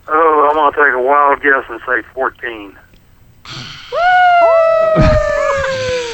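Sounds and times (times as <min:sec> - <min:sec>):
speech: 0:00.6 - 0:02.8
several dogs howling together: 0:03.9 - 0:06.1.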